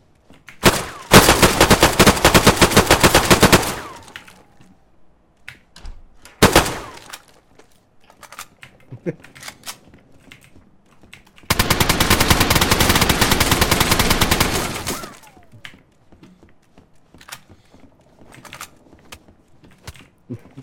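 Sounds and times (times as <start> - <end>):
automatic AK assault rifle fire in a video game: 0.6 - 4.2, 6.4 - 7.1, 11.5 - 15.0.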